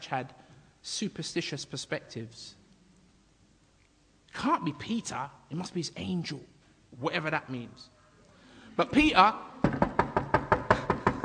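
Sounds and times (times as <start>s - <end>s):
speech: 0.1s - 2.6s, 4.4s - 8.0s, 8.8s - 9.8s
knocking on a door: 9.6s - 11.2s.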